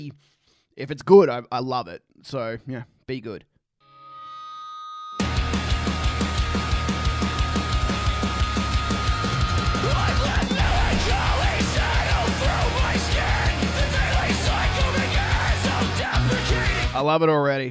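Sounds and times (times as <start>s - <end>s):
speech: 0.0s - 3.5s, 17.0s - 17.6s
distorted guitars in heavy rock track: 5.2s - 17.1s
pounding drums in heavy rock track: 5.6s - 16.9s
harsh screamed vocals in melodic hardcore song: 9.4s - 16.9s.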